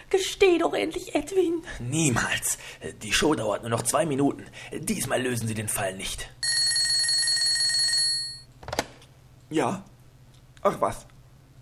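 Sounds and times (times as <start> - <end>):
speech: 0.1 - 6.4, 9.5 - 9.9, 10.6 - 11.1
telephone bell ringing: 6.4 - 8.5.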